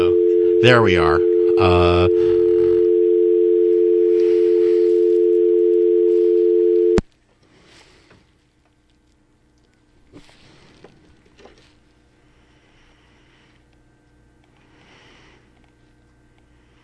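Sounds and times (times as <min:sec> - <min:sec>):
telephone dial tone while dialing a call: 0:00.0 - 0:07.0
speech: 0:00.6 - 0:02.4.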